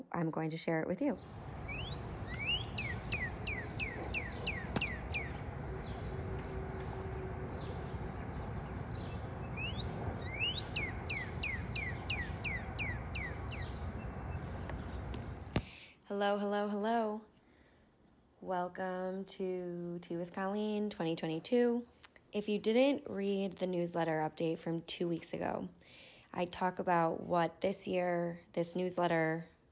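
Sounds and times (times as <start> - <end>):
steady low hum: 0.0 - 29.6
speech: 0.1 - 1.4, 16.2 - 17.3, 18.4 - 29.6
northern cardinal singing slurred whistles outdoors: 1.6 - 6.6, 7.6 - 15.0.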